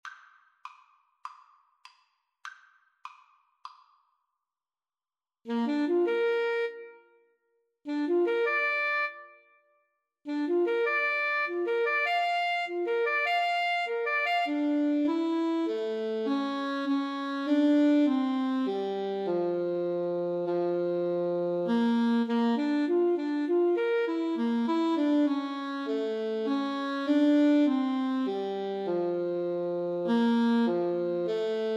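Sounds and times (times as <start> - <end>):
saxophone in a duet with trumpet: 5.5 - 7.3, 7.9 - 9.5, 10.3 - 31.7
trumpet in a duet with saxophone: 7.9 - 9.4, 10.3 - 31.7.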